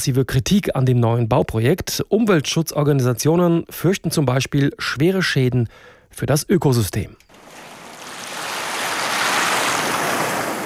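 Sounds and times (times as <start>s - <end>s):
speech: 0.0s - 7.2s
Indian Ocean surf washing in on Lamu island off the Kenyan coast: 7.3s - 10.6s.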